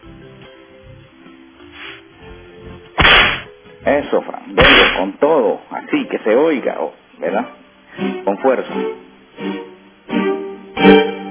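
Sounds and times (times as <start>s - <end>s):
faint murky noise: 0.0s - 11.3s
whip crack: 3.0s - 3.5s, 4.6s - 5.1s
speech: 3.9s - 9.6s.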